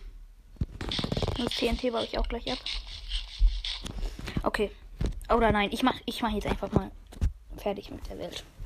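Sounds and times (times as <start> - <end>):
crunchy eating sounds of rotten flesh in the Minecraft video game: 0.8 - 3.9
speech: 1.4 - 2.8, 4.4 - 7.0, 7.6 - 8.6.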